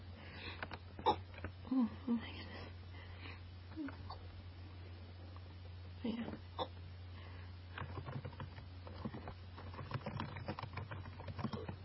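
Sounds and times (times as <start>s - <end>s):
low constant hum: 0.0s - 11.8s
speech: 1.0s - 2.4s
typing on a computer keyboard: 7.8s - 11.8s.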